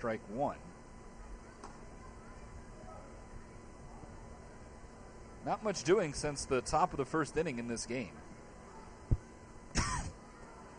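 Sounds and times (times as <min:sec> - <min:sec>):
speech: 0:00.0 - 0:00.7, 0:05.4 - 0:08.2
baseball broadcaster coughing into a live microphone: 0:09.7 - 0:10.2.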